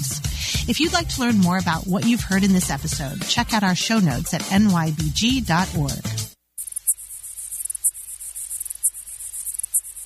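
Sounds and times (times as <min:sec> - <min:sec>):
speech: 0:00.7 - 0:06.2
male lesser water boatman mating song by stridulation: 0:06.5 - 0:10.0.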